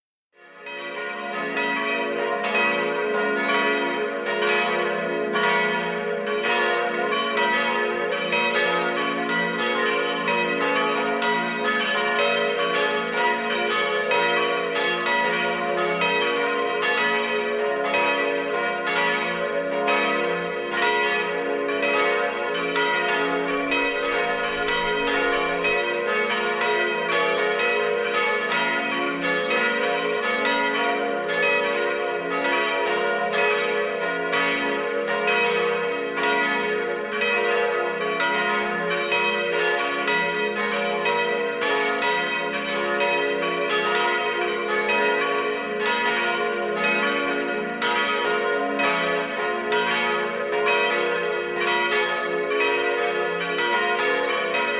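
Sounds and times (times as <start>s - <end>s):
parish church bells ringing: 0.4s - 54.7s.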